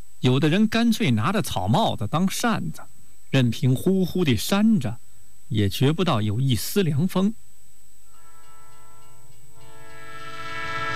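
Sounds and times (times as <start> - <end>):
speech: 0.2 - 7.4
long train whistle: 8.1 - 10.9.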